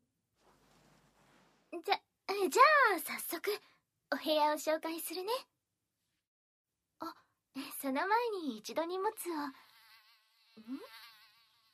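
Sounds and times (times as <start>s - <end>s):
speech: 1.7s - 5.5s, 7.0s - 7.2s, 7.8s - 9.6s, 10.6s - 11.0s
fly buzzing in a quiet room: 9.3s - 11.7s.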